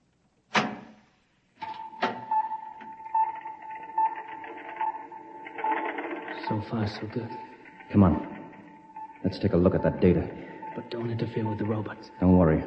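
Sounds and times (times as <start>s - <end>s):
mechanical clunk of door opening: 0.5s - 1.0s, 1.6s - 3.0s
speech: 6.5s - 8.3s, 9.2s - 12.6s.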